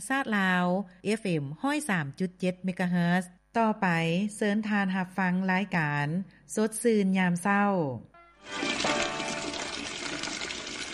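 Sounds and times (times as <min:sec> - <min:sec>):
speech: 0:00.0 - 0:08.7
water running from an opened tap: 0:08.5 - 0:10.9.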